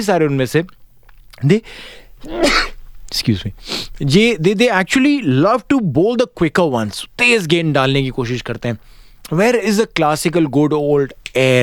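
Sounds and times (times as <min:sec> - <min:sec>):
speech: 0:00.0 - 0:00.8, 0:01.4 - 0:11.6
person sneezing on live radio: 0:02.2 - 0:02.8.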